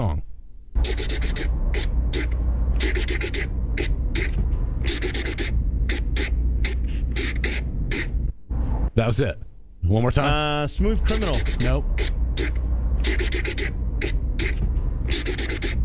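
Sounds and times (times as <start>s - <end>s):
steady low rumble: 0.2s - 15.8s
marker scratching on paper: 0.8s - 8.3s, 11.1s - 15.8s
speech: 9.0s - 12.2s.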